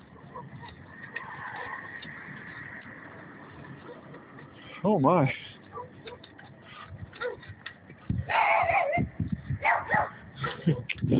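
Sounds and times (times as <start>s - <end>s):
dog barking and yipping: 0.1s - 1.8s, 5.7s - 6.4s, 7.1s - 7.5s, 8.2s - 10.9s
speech: 4.8s - 5.5s.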